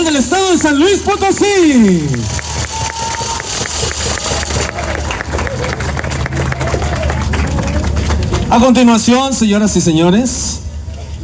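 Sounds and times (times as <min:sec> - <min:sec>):
speech: 0:00.2 - 0:02.4, 0:08.6 - 0:10.6
large crowd applauding: 0:00.3 - 0:09.0.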